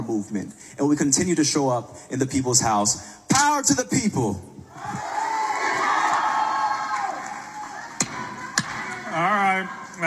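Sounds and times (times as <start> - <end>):
speech: 0.1 - 5.1, 9.2 - 10.0
crowd yelling and cheering in legislative gallery: 4.6 - 10.0.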